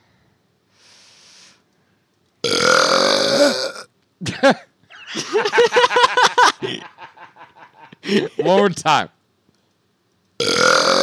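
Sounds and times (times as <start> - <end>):
long loud rumbling burp: 2.4 - 3.9, 10.4 - 11.0
snickering laughter and faint chuckles: 4.2 - 8.5
speech: 4.4 - 5.8, 8.1 - 9.2.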